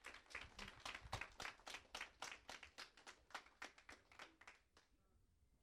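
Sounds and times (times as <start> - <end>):
group clapping rhythmically: 0.0 - 4.9.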